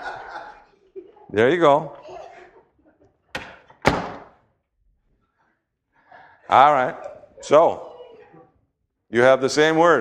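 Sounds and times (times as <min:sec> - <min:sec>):
laughter: 0:00.0 - 0:03.2, 0:06.1 - 0:08.6
speech: 0:01.3 - 0:02.0, 0:06.5 - 0:07.9, 0:09.1 - 0:09.9
door opening and closing: 0:03.3 - 0:04.4.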